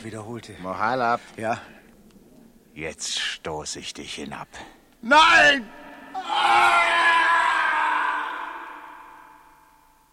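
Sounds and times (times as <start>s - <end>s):
speech: 0.0s - 1.8s, 2.8s - 6.9s
person screaming: 6.0s - 9.8s.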